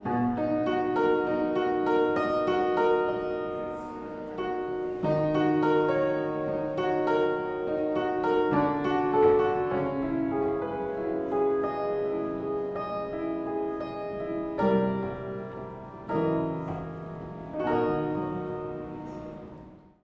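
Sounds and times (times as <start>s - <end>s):
mutating piano loops: 0.0s - 20.0s.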